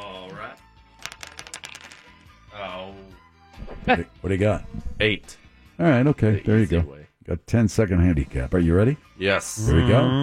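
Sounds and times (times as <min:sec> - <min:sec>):
dice clattering: 0:00.9 - 0:02.4
speech: 0:03.9 - 0:10.2.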